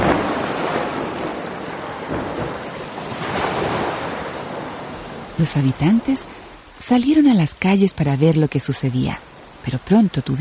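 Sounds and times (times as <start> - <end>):
strong sea wind roaring: 0.0 - 6.8
huge waves crashing in heavy surf: 0.0 - 10.4
speech: 5.4 - 10.4.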